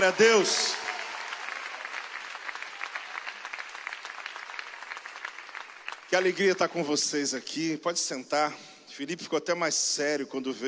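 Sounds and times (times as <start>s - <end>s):
speech: 0.0s - 0.8s, 6.1s - 10.6s
large church audience applauding: 0.0s - 6.9s.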